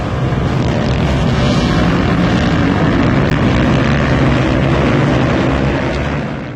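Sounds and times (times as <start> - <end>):
stunt motorcycle engines roaring at an airfield: 0.0 - 6.5
wind rumble: 0.0 - 6.5.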